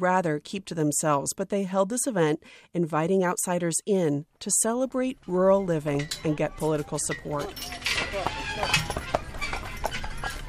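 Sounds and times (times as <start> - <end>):
speech: 0.0 - 9.1
horse hooves clip-clopping pulling a buggy at a rural country fair: 6.1 - 10.4.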